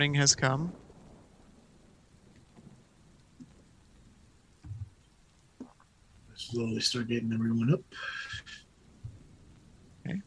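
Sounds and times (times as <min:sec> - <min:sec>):
speech: 0:00.0 - 0:00.8, 0:06.4 - 0:08.3, 0:10.1 - 0:10.2
faint steady rain falling at sunrise: 0:00.0 - 0:10.2
low thumps: 0:00.6 - 0:05.0, 0:08.4 - 0:10.0.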